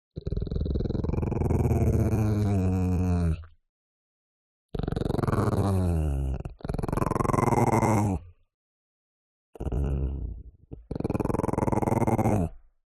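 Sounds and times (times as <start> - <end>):
Chihuahua growling: 0.2 - 3.5, 4.7 - 8.3, 9.6 - 12.7.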